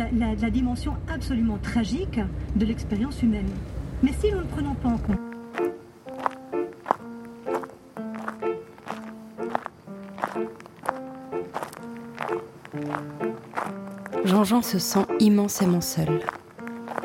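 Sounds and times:
speech: 0.1s - 5.8s, 14.3s - 16.4s
footsteps of a man walking: 5.2s - 17.0s.

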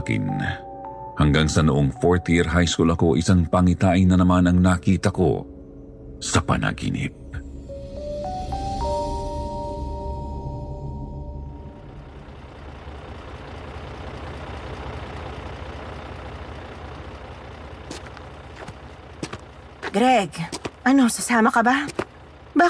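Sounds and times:
speech: 0.0s - 5.5s, 6.2s - 7.2s, 20.0s - 21.9s
jeepney diesel engine revving and idling before departing: 11.1s - 22.6s.

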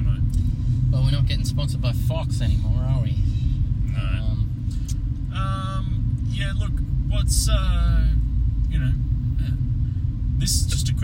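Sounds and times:
road and engine rumble inside a moving car: 0.0s - 11.0s
speech: 1.1s - 3.4s, 5.4s - 9.6s, 10.4s - 11.0s.

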